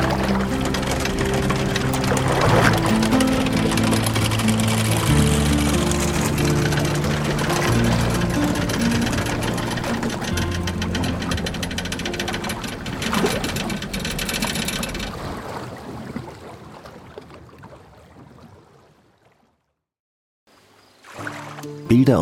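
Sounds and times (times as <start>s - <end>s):
chain ferry chain rattling through its gear on a river: 0.0s - 15.4s.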